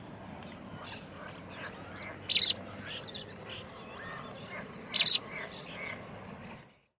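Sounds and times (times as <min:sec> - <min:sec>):
faint soft bird sounds: 0:00.0 - 0:06.9
low background noise: 0:00.0 - 0:06.9
white wagtail harsh high call: 0:00.8 - 0:05.9.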